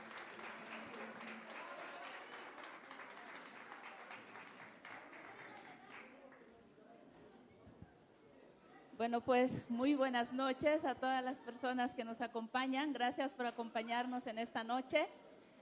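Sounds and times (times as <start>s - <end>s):
audience applause: 0.0s - 6.4s
speech: 9.0s - 15.2s.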